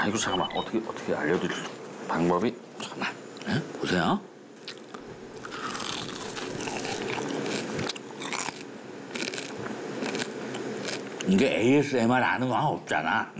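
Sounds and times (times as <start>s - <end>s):
speech: 0.0s - 4.3s, 11.3s - 13.3s
crunching crispy scorched rice crust: 4.6s - 11.4s.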